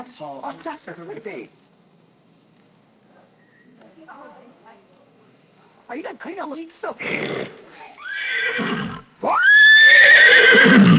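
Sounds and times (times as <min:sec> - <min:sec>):
pony neighing: 0:07.0 - 0:10.9.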